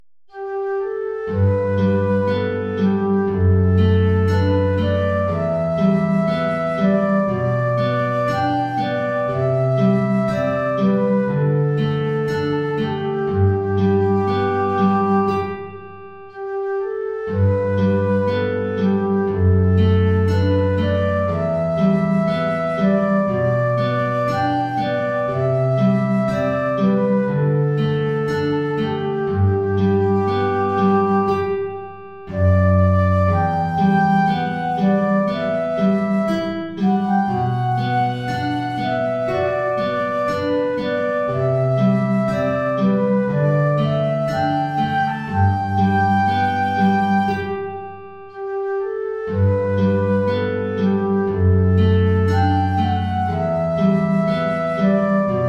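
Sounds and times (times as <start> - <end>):
guitar: 0.3 - 55.4
transverse flute: 0.3 - 55.4.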